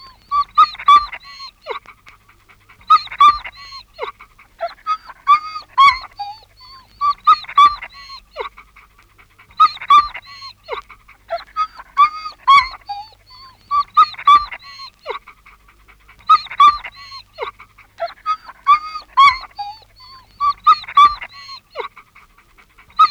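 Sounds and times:
anxious dog yelping and whimpering: 0:00.0 - 0:01.9, 0:02.6 - 0:22.0, 0:22.8 - 0:23.0.

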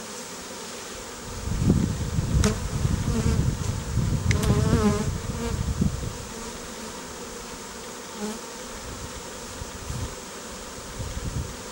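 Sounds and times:
bees buzzing in a low hum: 0:00.0 - 0:11.7.

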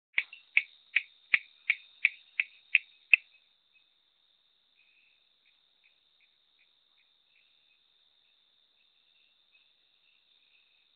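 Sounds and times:
Coorg yellow bush frog Raorchestes luteolus making snapping chirps: 0:00.2 - 0:03.3.

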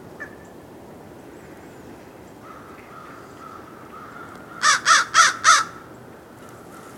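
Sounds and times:
Corvus brachyrhynchos American crow giving grating caws: 0:02.4 - 0:05.9.

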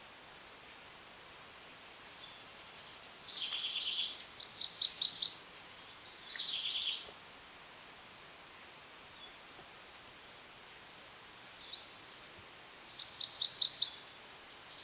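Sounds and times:
American redstart song: 0:01.7 - 0:09.7, 0:10.3 - 0:14.8.

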